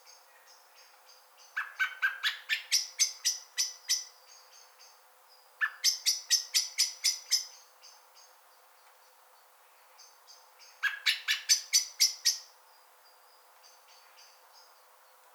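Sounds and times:
common blackbird Turdus merula chinking: 0.0 - 5.0, 5.6 - 8.0, 10.6 - 12.5.

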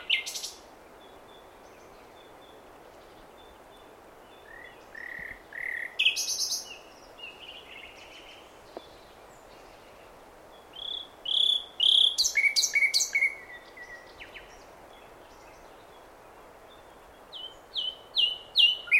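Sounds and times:
Common nightingale Luscinia megarhynchos singing: 0.0 - 18.9.

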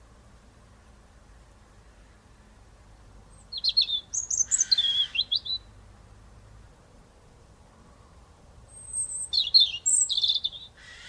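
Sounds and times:
European robin Erithacus rubecula singing: 3.3 - 5.8, 8.6 - 11.0.

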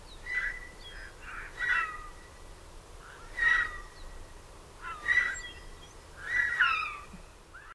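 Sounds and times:
Eurasian jay calling, Garrulus glandarius: 0.2 - 2.1, 3.2 - 3.9, 4.8 - 5.6, 6.2 - 7.7.

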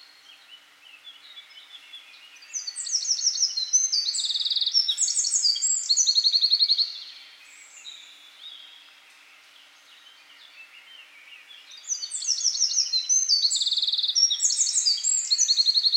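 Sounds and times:
Eurasian wren Troglodytes troglodytes singing trills and rattles: 2.4 - 7.1, 11.7 - 15.9.

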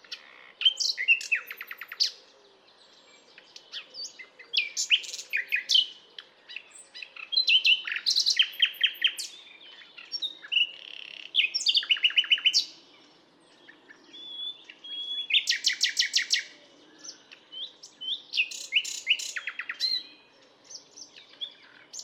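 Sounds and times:
common nightingale song: 0.0 - 22.0.

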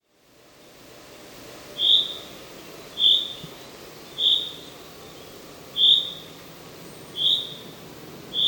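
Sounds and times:
faint steady background hiss: 0.0 - 8.4
common chaffinch Fringilla coelebs calling with clear whistled notes: 1.7 - 8.4.

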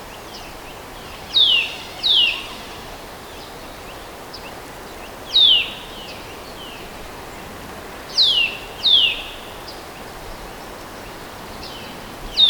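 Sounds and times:
low constant hiss: 0.0 - 12.4
Eurasian nuthatch Sitta europaea whistling: 0.4 - 3.5.

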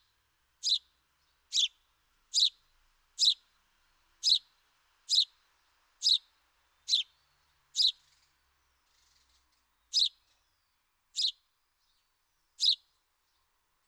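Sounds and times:
house sparrow Passer domesticus chirping: 0.6 - 0.9, 1.5 - 2.6, 3.2 - 3.4, 4.2 - 4.5, 5.1 - 5.4, 6.0 - 7.1, 7.7 - 8.2, 9.9 - 10.3, 11.2 - 11.4, 12.6 - 12.9.

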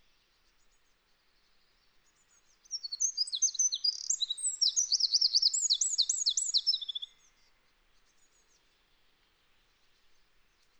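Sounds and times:
Eurasian wren Troglodytes troglodytes song: 2.7 - 7.1.

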